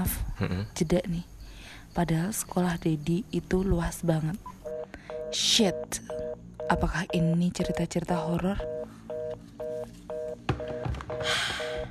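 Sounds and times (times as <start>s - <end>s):
speech: 0.0s - 1.3s, 2.0s - 4.6s, 5.3s - 8.8s
phone call dialing tone beeps: 4.6s - 11.8s.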